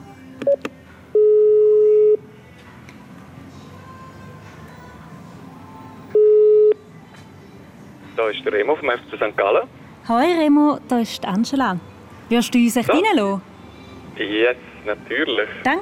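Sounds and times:
faint noise: 0:00.0 - 0:15.8
speech: 0:00.4 - 0:00.8, 0:08.2 - 0:13.5, 0:14.2 - 0:15.8
intercom ringing at a VIP entrance: 0:01.2 - 0:02.2, 0:06.2 - 0:06.8.

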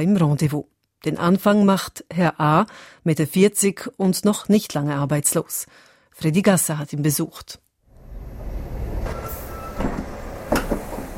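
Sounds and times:
speech: 0:00.0 - 0:07.6
train departing from a small railway station in the Zürcher Unterland, Switzerland: 0:07.9 - 0:11.1
metallic clanks and squeaks from train carriages: 0:08.4 - 0:11.1.

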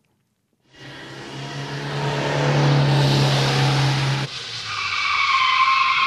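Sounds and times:
heavy vehicle engine roaring: 0:00.7 - 0:04.7
tire squeal skidding across pavement: 0:00.7 - 0:06.0.

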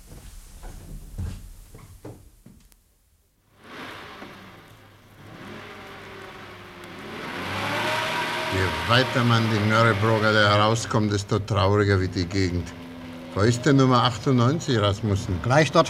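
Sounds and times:
car engine starting and rumbling as the car pulls away: 0:03.5 - 0:15.8
speech: 0:08.9 - 0:12.8, 0:13.4 - 0:15.8.

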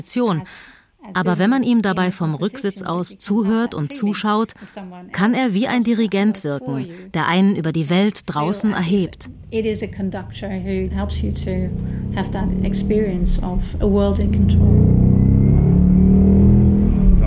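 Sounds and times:
speech: 0:00.0 - 0:15.1
low engine hum: 0:09.2 - 0:17.2.

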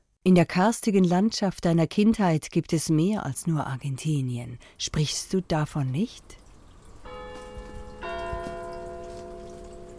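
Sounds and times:
speech: 0:00.2 - 0:06.4
rain: 0:06.3 - 0:09.9
Ticino church bell ringing: 0:07.0 - 0:09.9.

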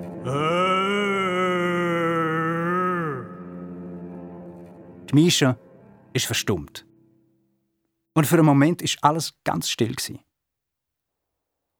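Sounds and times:
speech: 0:00.2 - 0:00.6, 0:05.1 - 0:06.9, 0:08.2 - 0:10.3
voice imitating a bear calling with a deep dull moo: 0:00.2 - 0:03.3.

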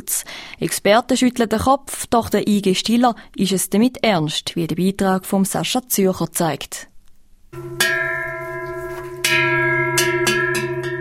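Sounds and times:
speech: 0:00.1 - 0:06.9, 0:07.5 - 0:08.0
cowbell clanking on a grazing cow on a pasture: 0:07.6 - 0:11.0.

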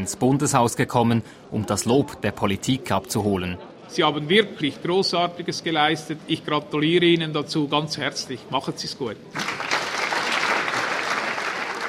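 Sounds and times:
speech: 0:00.0 - 0:09.7
applause for a medal-winning young sports team in the Swiss Federal Parliament building: 0:09.3 - 0:11.8.

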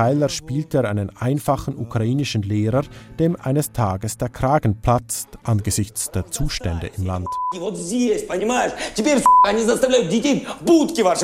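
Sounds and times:
person talking rapidly: 0:00.0 - 0:11.2
speech: 0:00.0 - 0:11.2
censor bleep masking a word: 0:07.2 - 0:07.6, 0:09.3 - 0:09.5.

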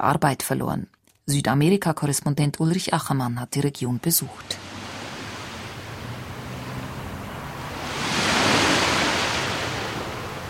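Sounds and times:
speech: 0:00.0 - 0:04.8
Pacific waves lapping onto sandy beach: 0:04.5 - 0:10.4.

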